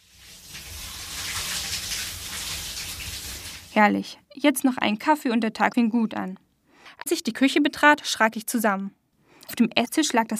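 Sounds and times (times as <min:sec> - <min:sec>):
shower water running: 0:00.0 - 0:03.8
speech: 0:03.8 - 0:06.4, 0:07.1 - 0:10.3.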